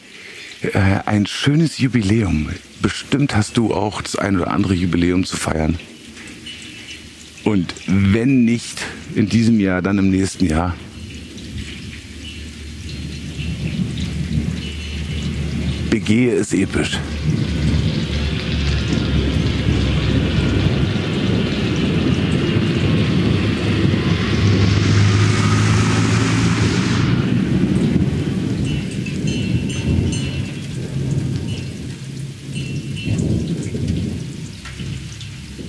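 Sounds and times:
steady dense rainfall: 0:00.0 - 0:35.6
speech: 0:00.6 - 0:05.9, 0:07.4 - 0:10.9, 0:15.9 - 0:17.6
deep rumbling thunder: 0:10.5 - 0:35.6
tractor engine droning: 0:13.1 - 0:30.1.

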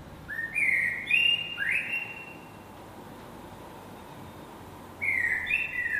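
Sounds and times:
blackbird singing fluting whistled phrases at dawn: 0:00.3 - 0:02.6, 0:05.0 - 0:05.9.

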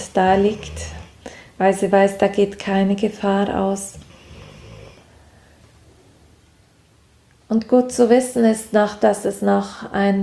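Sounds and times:
dog lying relaxed snoring softly: 0:00.0 - 0:01.5, 0:03.8 - 0:05.1
speech: 0:00.2 - 0:01.0, 0:01.6 - 0:04.0, 0:07.5 - 0:10.2.

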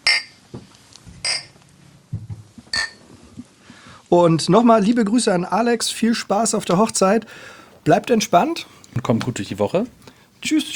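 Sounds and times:
glasses clinking in a toast: 0:00.0 - 0:00.4, 0:01.2 - 0:01.6, 0:02.7 - 0:03.0
speech: 0:04.1 - 0:10.7.

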